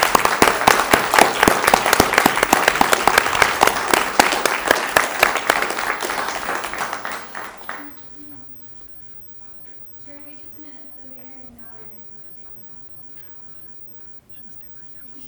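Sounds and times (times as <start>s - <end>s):
audience applause for a group of youth: 0.0s - 8.1s.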